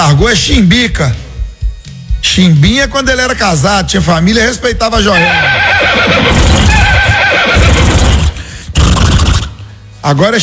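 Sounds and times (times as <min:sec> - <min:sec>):
speech: 0:00.1 - 0:01.2, 0:02.3 - 0:07.0, 0:10.0 - 0:10.4
horse neighing: 0:05.0 - 0:09.6.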